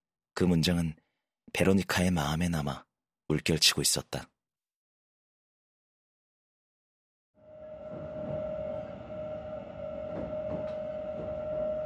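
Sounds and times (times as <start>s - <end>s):
speech: 0.4s - 4.3s
subway train rumbling with a low roar: 7.4s - 11.8s
sustained subway train whining tone: 7.4s - 11.8s.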